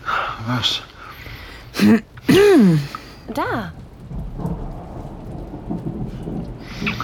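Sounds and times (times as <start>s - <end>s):
steady rain hissing and pattering: 0.0s - 7.0s
speech: 0.5s - 0.9s, 1.8s - 3.8s
low rolling thunder: 1.7s - 7.0s.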